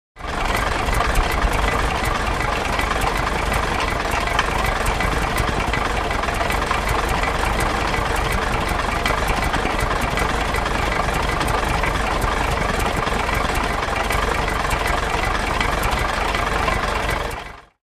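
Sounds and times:
Stearman engine idling low: 0.2s - 17.8s.

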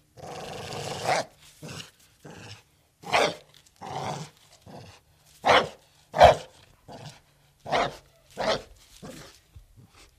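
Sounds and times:
pit bull barking: 3.1s - 3.4s, 5.4s - 6.5s, 7.7s - 8.7s.

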